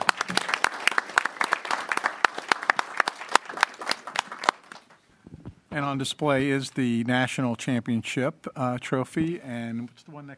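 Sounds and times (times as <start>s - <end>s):
audience applauding for student athletes: 0.0s - 5.0s
speech: 5.8s - 10.3s.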